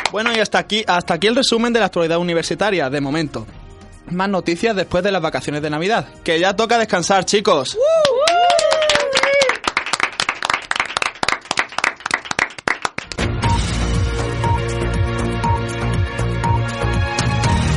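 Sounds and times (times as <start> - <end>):
small group applauding university students: 0.0 - 0.5, 8.0 - 13.3
speech: 0.1 - 8.2
whistles and cheers: 7.8 - 9.6
music jingle: 13.2 - 17.7.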